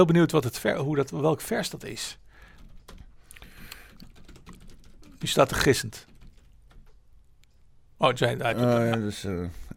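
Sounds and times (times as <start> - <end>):
speech: 0.0 - 2.2, 5.2 - 6.1, 8.0 - 9.7
rapid irregular typing on a computer keyboard: 2.5 - 7.1.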